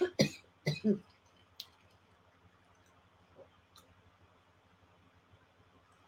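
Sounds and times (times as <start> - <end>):
harsh coughs: 0.0 - 1.0.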